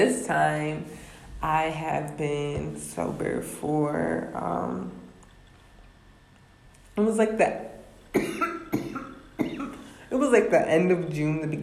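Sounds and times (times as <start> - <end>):
speech: 0.0 - 5.0, 7.0 - 7.7, 10.1 - 11.6
person with a tickle in the throat coughing: 8.1 - 9.9.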